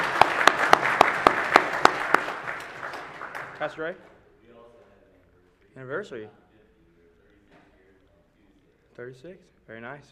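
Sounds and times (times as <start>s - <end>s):
group of people applauding indoors: 0.0s - 3.8s
one person's sharp claps in a steady even rhythm: 0.0s - 4.0s
speech: 3.6s - 4.2s, 5.8s - 6.4s, 9.0s - 10.1s.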